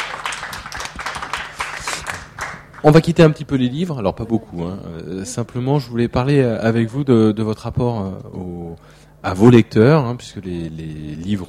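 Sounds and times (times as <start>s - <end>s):
audience applause after a reading: 0.0s - 3.0s
speech: 2.8s - 11.4s.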